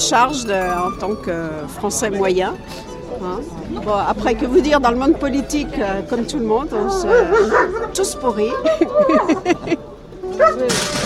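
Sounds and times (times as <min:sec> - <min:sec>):
speech: 0:00.1 - 0:11.0
laughter: 0:06.7 - 0:10.5
dog barking in sharp yaps: 0:06.9 - 0:08.0, 0:10.3 - 0:10.7.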